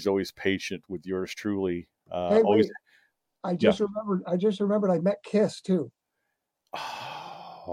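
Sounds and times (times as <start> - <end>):
speech: 0.0 - 2.8, 3.4 - 6.0, 6.7 - 7.1
person gasping in surprise: 6.7 - 7.7.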